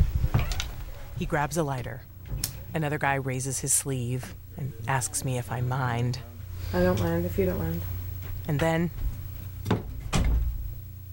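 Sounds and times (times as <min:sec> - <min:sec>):
low steady room hum: 0:00.0 - 0:11.1
speech: 0:01.2 - 0:02.1, 0:02.8 - 0:09.1
door pushed shut thudding: 0:09.6 - 0:10.6.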